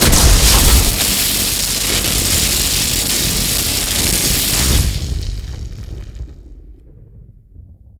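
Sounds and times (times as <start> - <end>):
magic lightning storm: 0.0 - 7.8.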